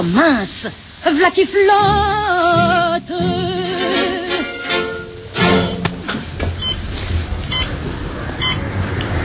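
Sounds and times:
speech: 0:00.0 - 0:03.6
tones: 0:01.2 - 0:09.2
thumps: 0:05.6 - 0:08.1
electronic beeps from a control device: 0:06.6 - 0:06.8, 0:07.5 - 0:07.8, 0:08.4 - 0:08.7.

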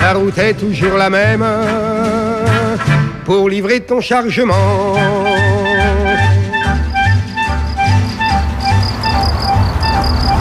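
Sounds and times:
speech: 0:00.0 - 0:05.3
crickets chirping: 0:06.5 - 0:10.4.

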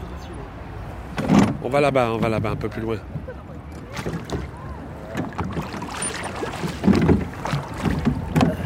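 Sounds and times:
faint wind noise: 0:00.0 - 0:08.6
speech: 0:01.6 - 0:03.2
oars dipping and splashing as a small rowboat moves through water: 0:03.6 - 0:08.6.

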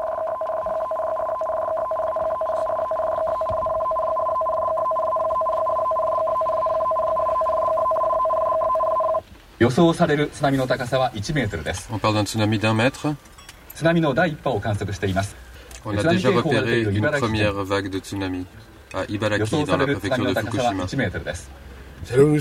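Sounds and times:
tsunami alert warning tone with two pitches during an earthquake in Japan: 0:00.0 - 0:09.2
speech: 0:09.6 - 0:22.3.

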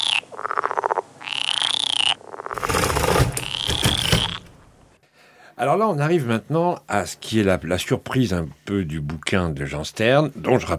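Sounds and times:
chorus of several frogs croaking: 0:00.0 - 0:04.5
speech: 0:05.6 - 0:10.7.

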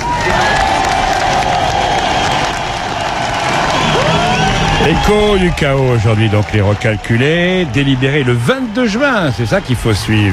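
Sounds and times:
scattered whoops and shouts: 0:00.0 - 0:07.6
large audience applauding: 0:00.0 - 0:10.3
speech: 0:04.9 - 0:10.3.

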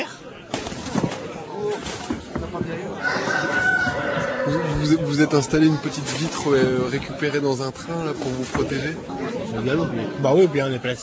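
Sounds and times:
murmuring voices: 0:00.0 - 0:11.0
rooster crowing at a cockfight: 0:03.0 - 0:05.0
speech: 0:04.5 - 0:11.0.

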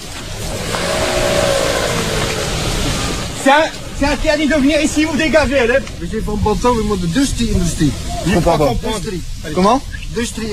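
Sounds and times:
car engine revving as it arrives: 0:00.0 - 0:05.4
speech: 0:03.5 - 0:10.5.

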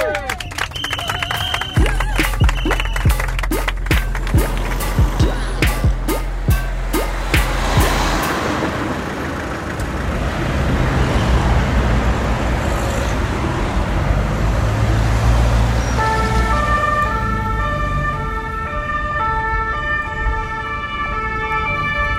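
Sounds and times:
sirens of arriving riot police vans wailing: 0:00.0 - 0:10.2, 0:15.9 - 0:22.1
police van engine rumble: 0:00.0 - 0:19.0
steady heavy traffic noise: 0:00.0 - 0:22.1.

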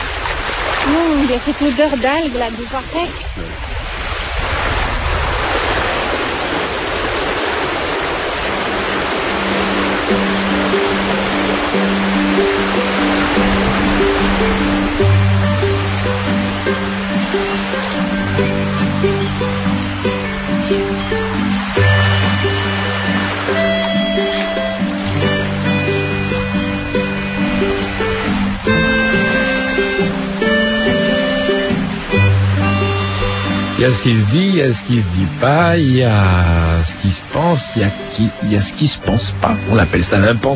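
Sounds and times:
wind buffeting: 0:00.0 - 0:34.5
sea water surging around a tidal sea pool: 0:00.0 - 0:40.5
speech: 0:00.9 - 0:03.7, 0:33.8 - 0:40.5
low rhythmic tonal hums and pulses: 0:08.5 - 0:40.5.

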